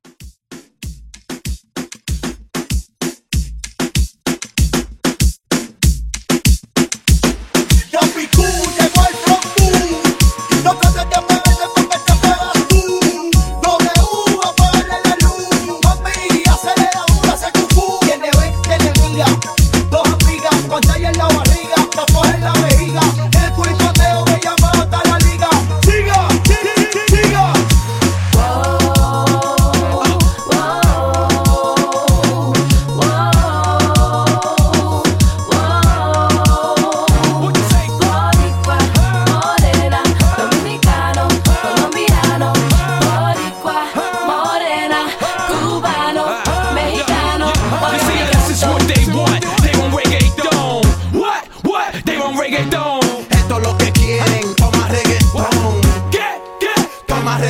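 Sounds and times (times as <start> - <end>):
reggaeton hype drum beat: 0.0 - 44.6, 45.4 - 51.4, 52.0 - 57.4.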